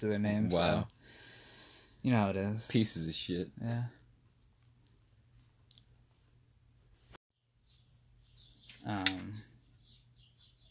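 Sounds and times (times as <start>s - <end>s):
speech: 0.0s - 1.2s, 2.0s - 4.0s, 8.8s - 9.5s
birds chirping: 7.4s - 10.7s.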